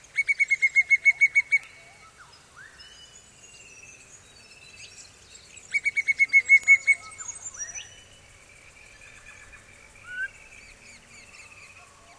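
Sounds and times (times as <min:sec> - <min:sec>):
pallid cuckoo calling with piping whistled notes: 0:00.0 - 0:03.6, 0:05.6 - 0:08.2, 0:08.9 - 0:12.1
birds chirping and whistling softly: 0:00.0 - 0:12.1.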